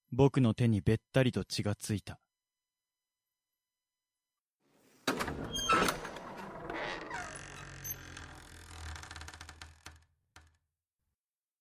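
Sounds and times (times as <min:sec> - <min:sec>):
speech: 0:00.1 - 0:02.2
heavy door scraping, rattling slide as it swings wide: 0:05.1 - 0:10.0.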